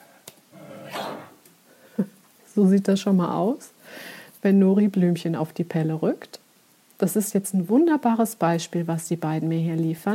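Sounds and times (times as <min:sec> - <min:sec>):
dog growling: 0:00.5 - 0:01.4
speech: 0:02.0 - 0:03.8, 0:04.4 - 0:06.4, 0:07.0 - 0:10.1.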